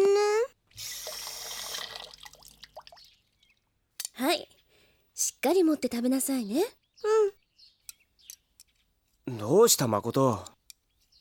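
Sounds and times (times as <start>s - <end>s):
faint water drips: 0.7s - 4.8s
speech: 5.4s - 6.8s, 9.6s - 10.6s.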